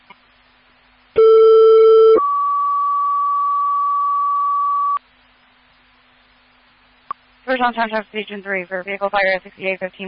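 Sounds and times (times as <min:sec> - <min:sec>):
two-tone fire dispatch paging tones: 0:01.2 - 0:05.0
speech: 0:07.5 - 0:10.0.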